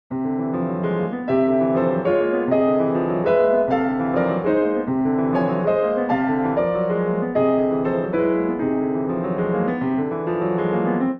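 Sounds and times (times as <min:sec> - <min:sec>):
Steinway D grand piano playing: 0:00.1 - 0:11.1.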